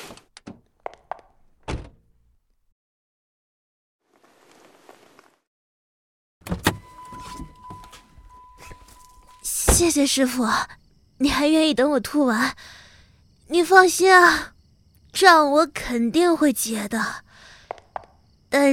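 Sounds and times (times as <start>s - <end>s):
car door unlocking: 6.4s - 10.0s
sharp mechanical clicks and thunks: 6.4s - 10.0s
rattling movement: 6.5s - 10.1s
speech: 9.8s - 12.8s, 13.5s - 14.5s, 15.1s - 17.2s, 18.5s - 18.7s.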